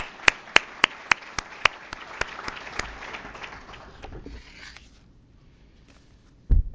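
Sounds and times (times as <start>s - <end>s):
audience clapping: 0.0s - 4.5s.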